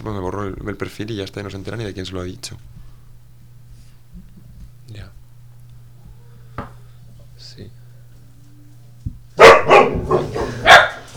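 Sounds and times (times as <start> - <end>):
speech: 0.0 - 2.8
dog barking: 9.4 - 11.1.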